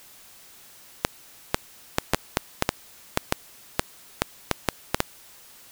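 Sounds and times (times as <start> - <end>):
muon clicks: 1.0 - 5.1.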